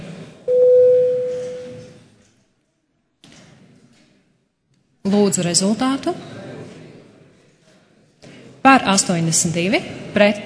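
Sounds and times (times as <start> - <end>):
electronic bell signal of a parliament chamber before a vote: 0.5 - 1.8
speech: 5.1 - 6.4, 8.7 - 10.4
faint murmur in a parliament chamber: 5.4 - 10.4.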